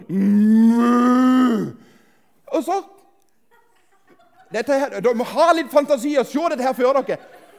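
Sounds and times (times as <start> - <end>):
human voice imitating a cow mooing: 0.0 - 1.8
speech: 0.1 - 0.5, 2.6 - 3.0, 4.5 - 7.4
laughter: 6.6 - 7.5.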